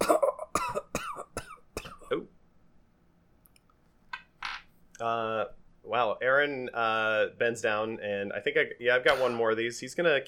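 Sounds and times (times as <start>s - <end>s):
weak raspy cough: 0.0s - 2.2s, 9.1s - 9.5s
speech: 5.0s - 10.2s.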